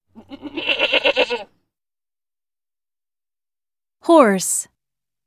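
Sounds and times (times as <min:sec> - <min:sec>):
goat bleating: 0:00.1 - 0:01.5
speech: 0:04.1 - 0:04.7.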